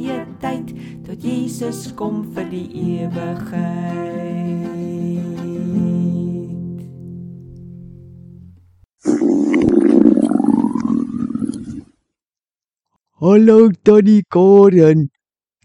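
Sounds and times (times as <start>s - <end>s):
speech: 0.1s - 5.5s, 13.2s - 15.6s
stomach rumbling with gurgling and churning growl: 9.0s - 12.0s.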